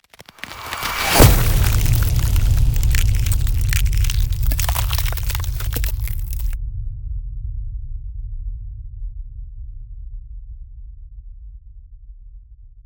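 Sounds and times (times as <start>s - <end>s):
icy meteor ice spell area damage impact: 0.2s - 6.6s.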